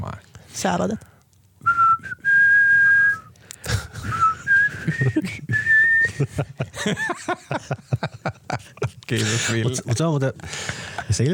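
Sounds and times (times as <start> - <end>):
speech: 0.6 - 1.1, 6.2 - 8.4, 9.1 - 11.3
people whistling a melodic riff together: 1.6 - 3.3, 3.9 - 6.4
laughter: 4.7 - 11.3.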